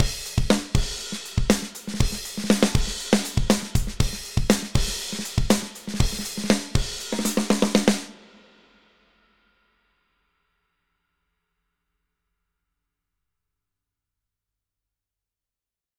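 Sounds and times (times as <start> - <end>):
drums: 0.0 - 10.0.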